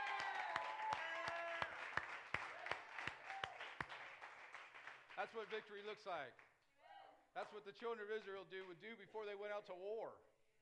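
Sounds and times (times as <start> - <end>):
crowd voices cheering and singing: 0.0 - 1.8
audience clapping in a steady rhythmic beat: 0.0 - 6.5
speech: 5.2 - 6.5, 7.4 - 10.3.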